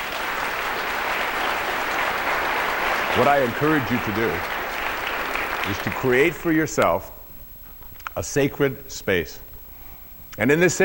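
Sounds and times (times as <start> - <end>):
audience applause after a talk: 0.0 - 6.6
speech: 3.1 - 4.6, 5.6 - 7.2, 8.2 - 9.4, 10.4 - 10.8.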